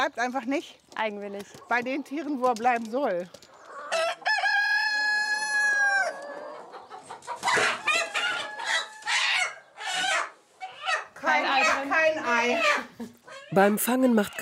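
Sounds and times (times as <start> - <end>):
speech: 0.0 - 3.5, 13.5 - 14.4
chickens clucking and squawking: 3.4 - 14.4
rooster crowing: 3.9 - 6.6, 7.5 - 10.3.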